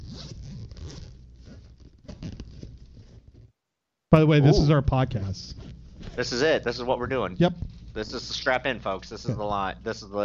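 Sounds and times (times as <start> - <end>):
zipper being pulled: 0.0 - 3.5
speech: 4.1 - 10.2.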